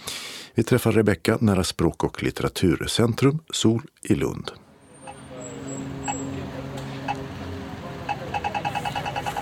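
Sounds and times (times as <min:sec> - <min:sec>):
speech: 0:00.6 - 0:04.6
road traffic rumble near the Centre for Languages and Literature in Lund: 0:04.6 - 0:09.4
engine hum: 0:04.7 - 0:09.4
rhythmic ticking: 0:08.0 - 0:09.4.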